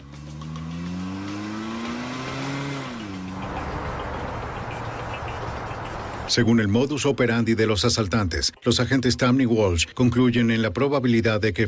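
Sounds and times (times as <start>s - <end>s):
getaway car engine revving and accelerating: 0.0s - 6.3s
speech: 6.3s - 11.6s.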